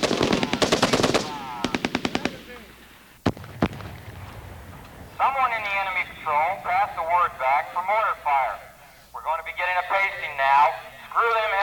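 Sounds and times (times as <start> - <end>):
machine gun fire during night firing exercise: 0.0 - 2.6, 3.2 - 7.2
isolated sharp gunshots: 0.0 - 8.8, 9.5 - 11.6.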